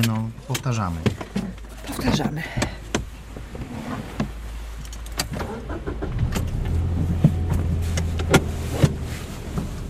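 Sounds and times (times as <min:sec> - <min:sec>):
speech: 0:00.0 - 0:01.2, 0:02.0 - 0:02.7
clicks and knocks from inside the car cabin: 0:00.0 - 0:03.6, 0:06.2 - 0:09.7
car engine starting and pulling away during a driving lesson: 0:03.5 - 0:09.8.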